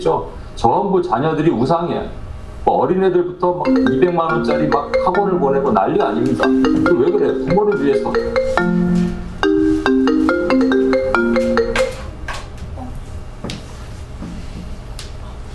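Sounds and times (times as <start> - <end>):
speech: 0.0 - 8.9
mobile phone ringtone with electronic tones: 3.7 - 12.2.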